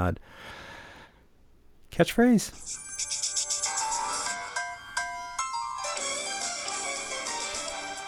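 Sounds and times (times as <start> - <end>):
speech: 0.0 - 0.6, 2.0 - 3.2
tinny TV theme tune played from a phone: 2.5 - 8.0.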